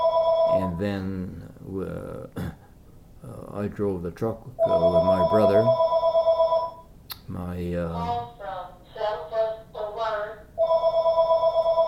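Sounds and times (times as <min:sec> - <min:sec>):
telephone ringing with a pulsing electronic tone: 0:00.0 - 0:00.8, 0:04.6 - 0:06.8, 0:10.6 - 0:11.8
speech: 0:00.5 - 0:02.5, 0:03.2 - 0:05.9, 0:07.3 - 0:08.3.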